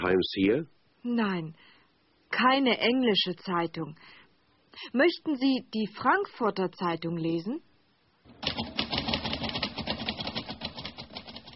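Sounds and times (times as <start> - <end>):
speech: 0.0 - 1.7, 2.3 - 4.2, 4.8 - 7.7, 8.4 - 8.8
typewriter keys clacking: 8.4 - 11.5.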